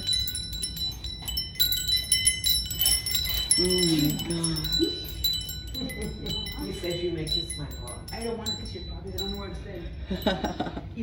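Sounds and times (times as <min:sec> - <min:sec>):
wind chimes ringing: 0:00.0 - 0:11.0
speech: 0:03.6 - 0:05.0, 0:05.8 - 0:11.0
laughter: 0:10.0 - 0:11.0.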